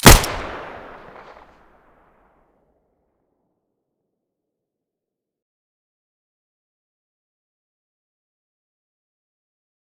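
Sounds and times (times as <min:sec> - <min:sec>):
Five-seven weapon muzzle blast: 0:00.0 - 0:01.4.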